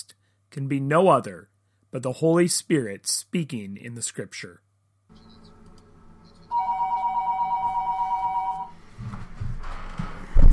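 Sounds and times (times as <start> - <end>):
speech: 0.5 - 4.6
phone ringtone ringing: 6.5 - 8.8.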